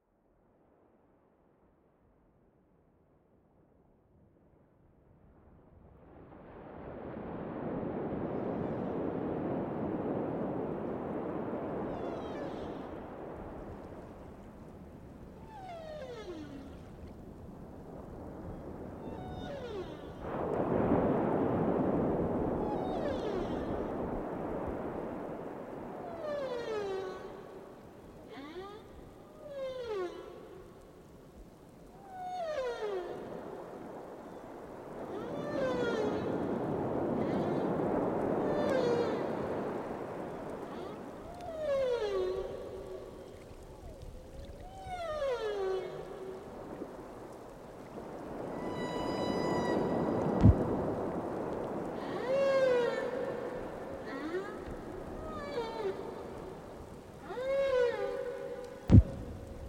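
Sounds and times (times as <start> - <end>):
seaside ambience: 6.2 - 59.6.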